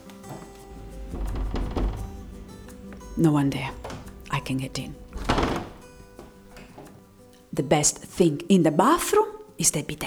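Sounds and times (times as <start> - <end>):
knocking on a wooden bathroom door: 0.4 - 6.9
speech: 3.2 - 3.8, 4.4 - 5.5, 7.6 - 10.0.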